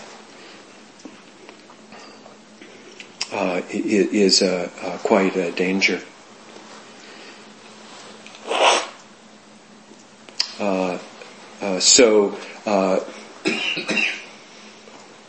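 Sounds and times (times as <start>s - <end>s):
speech: 3.3s - 6.1s, 11.8s - 14.1s
person coughing and hacking: 13.4s - 14.2s.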